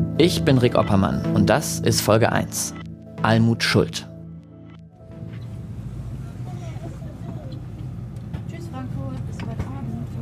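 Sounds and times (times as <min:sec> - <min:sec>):
speech: 0:00.2 - 0:04.1
train carriage in motion rumbling: 0:05.1 - 0:10.1
voices of families and hen parties murmuring on a train: 0:05.3 - 0:10.1.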